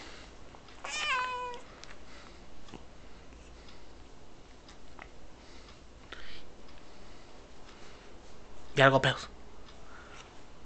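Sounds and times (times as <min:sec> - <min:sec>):
cat meowing: 0:00.8 - 0:01.7
speech: 0:08.8 - 0:09.3.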